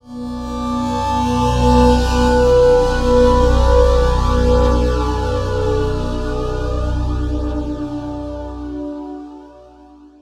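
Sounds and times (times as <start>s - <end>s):
evolving synth pad texture transition: 0.1s - 10.2s.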